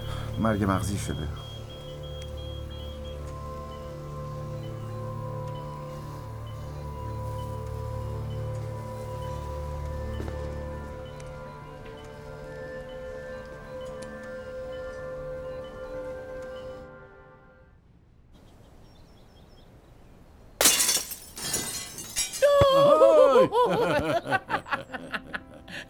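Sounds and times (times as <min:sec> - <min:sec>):
soft tonal hum: 0:00.0 - 0:17.8
speech: 0:00.4 - 0:01.5
scattered glass shards tinkling: 0:20.6 - 0:22.6
glass shattering: 0:20.6 - 0:22.7
people laughing: 0:22.5 - 0:25.8.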